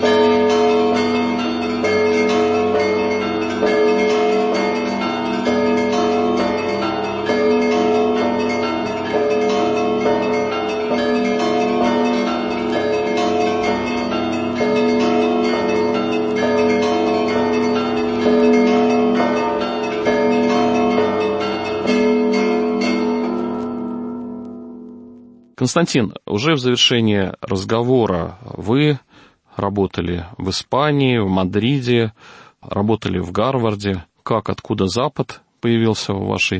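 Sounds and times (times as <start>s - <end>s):
swinging church bells pealing: 0.0s - 25.4s
speech: 25.7s - 36.5s.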